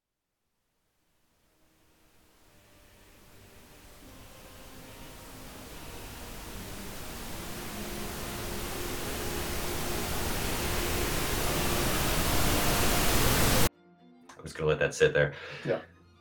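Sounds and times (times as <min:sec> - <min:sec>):
steady broadband static hiss: 0:00.8 - 0:13.7
speech: 0:14.6 - 0:16.1.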